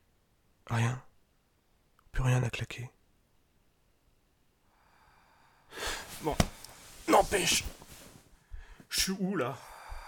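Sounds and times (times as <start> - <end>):
speech: 0.7 - 1.1, 2.2 - 3.0, 6.2 - 6.5, 7.1 - 7.8, 8.9 - 9.7
person exhaling: 4.8 - 6.3, 9.6 - 10.0.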